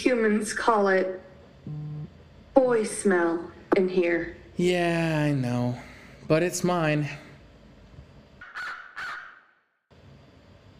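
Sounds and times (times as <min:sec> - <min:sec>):
speech: 0:00.0 - 0:01.8, 0:02.6 - 0:07.2
crow cawing: 0:08.4 - 0:09.6.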